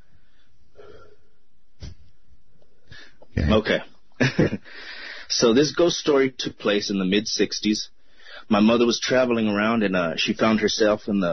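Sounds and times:
deep breath: 0.0s - 2.0s, 2.8s - 3.3s, 4.6s - 5.3s, 8.0s - 8.5s
speech: 3.4s - 11.3s.

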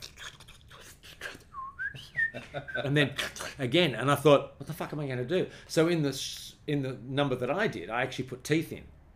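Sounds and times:
person whistling a wavering melodic phrase: 1.6s - 2.8s
laughter: 2.4s - 2.9s
speech: 2.8s - 9.0s.

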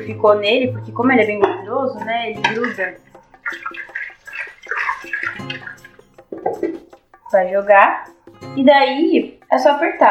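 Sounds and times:
speech: 0.0s - 3.8s, 7.3s - 10.1s
water pouring into a blender jar: 2.4s - 6.8s.

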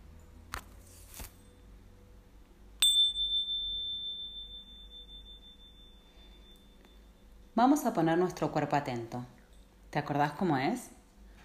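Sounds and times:
mindfulness bell ringing with a clear pure tone: 2.8s - 7.5s
speech: 7.6s - 9.4s, 10.0s - 11.0s.

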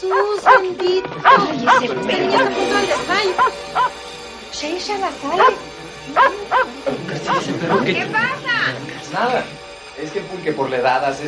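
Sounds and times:
laughter: 0.0s - 3.9s, 5.4s - 9.6s
dog barking loudly: 0.0s - 4.0s, 5.4s - 5.6s, 6.2s - 7.4s
speech: 0.0s - 11.2s.

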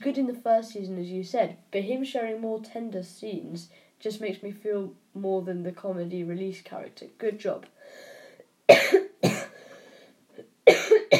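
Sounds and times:
speech: 0.0s - 8.1s
person coughing harshly: 8.7s - 9.8s, 10.4s - 11.1s.

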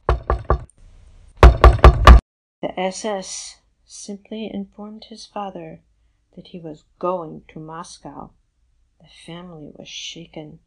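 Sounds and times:
heavy pounding on a door: 0.0s - 0.7s, 1.4s - 2.2s
speech: 2.7s - 8.4s, 9.0s - 10.6s.

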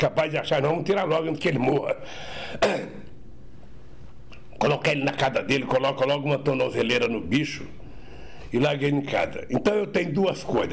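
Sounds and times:
speech: 0.0s - 3.1s, 4.6s - 7.8s, 8.5s - 10.7s
person coughing: 2.5s - 3.1s.

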